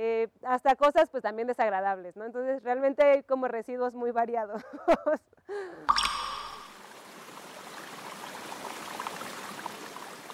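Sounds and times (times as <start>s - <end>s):
speech: 0.0s - 6.4s
stream rushing and gurgling: 5.9s - 10.3s.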